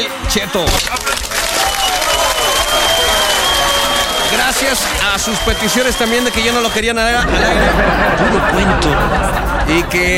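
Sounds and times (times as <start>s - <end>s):
speech: 0.0s - 1.4s, 4.3s - 10.1s
crowd applause: 0.0s - 9.9s
thin sustained whistle-like tone: 1.7s - 6.9s
laughter: 3.2s - 10.1s.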